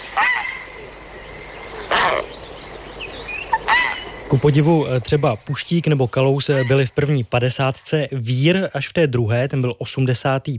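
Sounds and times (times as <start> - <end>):
grey heron harsh rasping calls: 0.0 - 8.0
speech: 4.3 - 10.5.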